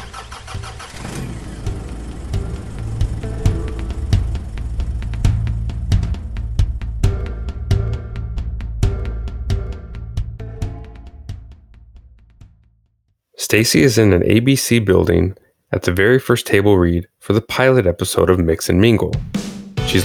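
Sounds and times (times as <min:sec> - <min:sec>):
car engine cranking over as the ignition is turned: 0:00.0 - 0:07.2
car engine idling with faint rhythmic ticks and knocks: 0:00.0 - 0:08.4
speech: 0:13.5 - 0:20.0.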